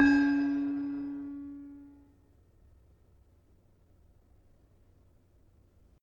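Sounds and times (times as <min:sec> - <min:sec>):
gravity harps tuned to D: 0:00.0 - 0:01.8.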